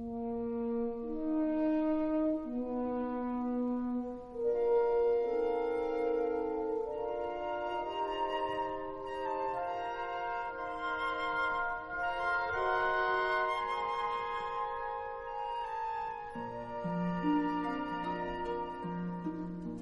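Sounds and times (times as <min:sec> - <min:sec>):
full symphony orchestra playing live with sustained strings: 0:00.0 - 0:19.8.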